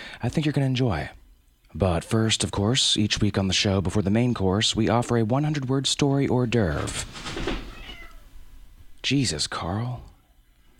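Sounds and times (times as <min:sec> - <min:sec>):
speech: 0:00.2 - 0:07.6, 0:09.0 - 0:10.1
cat meowing: 0:07.5 - 0:08.4.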